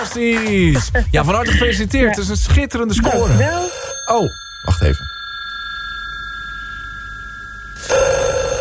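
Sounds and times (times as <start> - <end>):
speech: 0.1 - 5.1
telephone bell ringing: 3.0 - 8.5.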